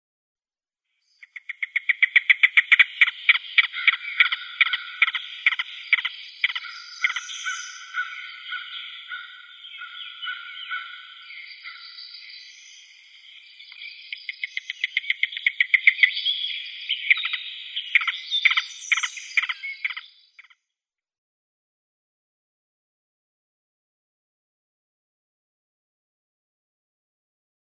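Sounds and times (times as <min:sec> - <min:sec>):
Yellow-billed Cuckoo display call: 0:01.2 - 0:20.5.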